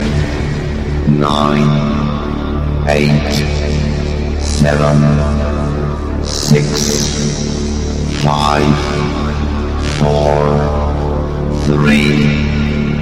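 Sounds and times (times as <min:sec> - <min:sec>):
electro countdown music: 0:00.0 - 0:13.0.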